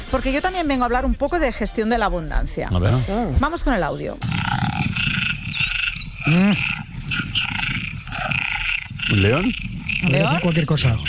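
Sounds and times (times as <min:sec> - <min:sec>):
speech: 0:00.1 - 0:04.6, 0:06.2 - 0:06.8, 0:09.1 - 0:11.0
chorus of frogs croaking and trilling: 0:04.2 - 0:11.0.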